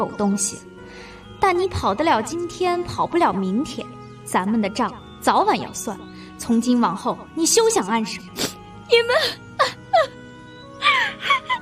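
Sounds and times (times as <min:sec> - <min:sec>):
speech: 0:00.0 - 0:09.8
person crying and wailing in a dramatic scene: 0:08.4 - 0:10.2, 0:10.8 - 0:11.5.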